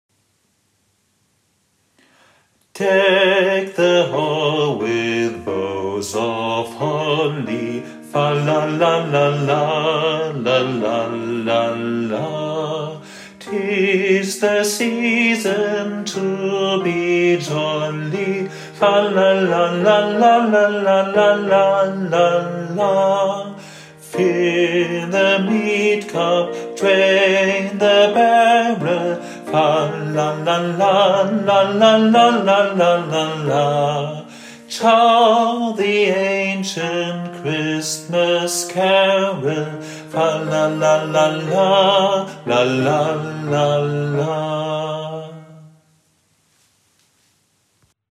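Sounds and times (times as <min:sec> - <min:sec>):
christmas carol melody: 0:02.8 - 0:45.8.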